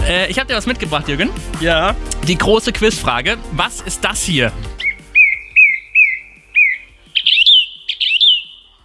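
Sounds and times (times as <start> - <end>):
speech: 0.2 - 4.8
song thrush singing: 4.1 - 8.8.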